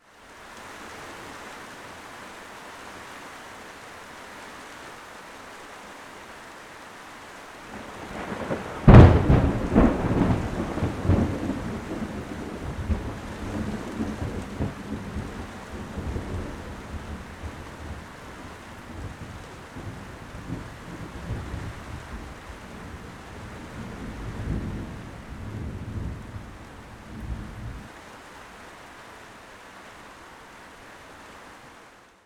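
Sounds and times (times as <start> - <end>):
rain: 0.0 - 32.2
close thunder strike: 8.8 - 12.0.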